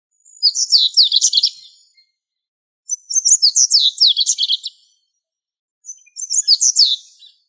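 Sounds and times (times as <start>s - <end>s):
bird chirping with high-pitched sharp twittering: 0.2s - 2.0s, 2.9s - 5.0s, 5.8s - 7.4s
speech: 0.5s - 1.8s.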